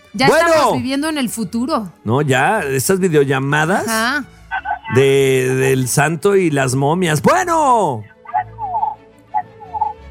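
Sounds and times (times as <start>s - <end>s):
speech: 0.1s - 8.1s
hen clucking: 8.3s - 10.0s.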